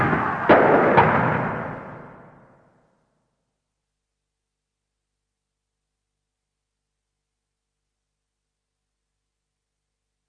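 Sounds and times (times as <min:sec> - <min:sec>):
firearm gunshots with echo: 0:00.0 - 0:02.4.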